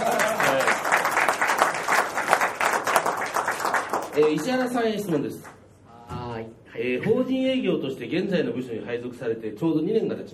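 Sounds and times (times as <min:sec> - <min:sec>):
room full of people applauding: 0:00.0 - 0:04.8
speech: 0:04.2 - 0:05.5, 0:06.8 - 0:10.3.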